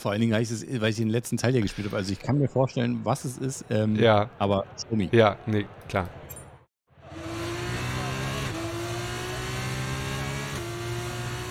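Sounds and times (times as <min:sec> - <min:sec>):
speech: 0:00.0 - 0:06.3
racing car engines roaring in a racing video game: 0:06.9 - 0:11.4.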